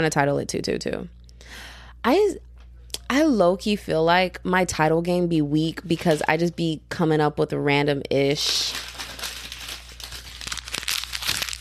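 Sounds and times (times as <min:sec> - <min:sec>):
speech: 0:00.0 - 0:02.5, 0:03.1 - 0:08.8
piece of paper being crumpled up: 0:08.4 - 0:11.5.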